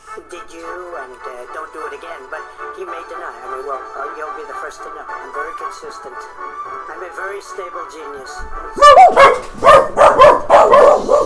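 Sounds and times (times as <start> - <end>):
speech: 0.2 - 10.4
dogs giving loud yelping barks: 8.6 - 11.2.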